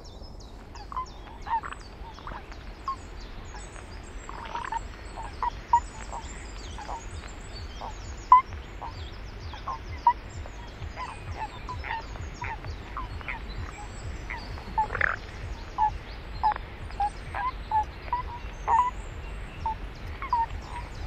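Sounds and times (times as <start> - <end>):
low rumble: 0.0 - 21.0
toads calling in short yelping notes: 0.6 - 21.0.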